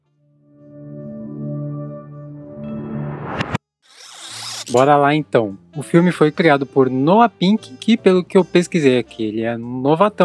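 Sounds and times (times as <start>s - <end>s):
streaming service opening logo sound played backwards: 3.0s - 4.8s
speech: 4.7s - 10.2s.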